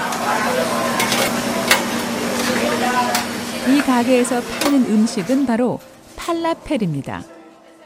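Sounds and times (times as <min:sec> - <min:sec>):
faint voices murmuring in a falafel shop: 0:00.0 - 0:05.6
steady sizzling in a busy falafel shop kitchen: 0:00.1 - 0:06.7
speech: 0:03.7 - 0:07.3.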